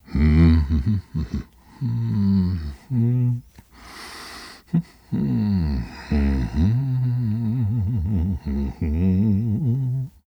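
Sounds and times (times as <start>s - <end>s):
male voices humming: 0.0s - 3.6s, 4.6s - 10.2s.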